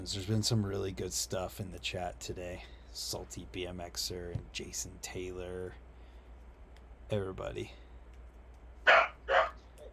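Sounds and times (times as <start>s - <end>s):
speech: 0.0s - 5.8s, 7.1s - 7.8s, 8.8s - 9.1s
faint low hum: 0.0s - 9.9s
dog barking: 8.9s - 9.7s.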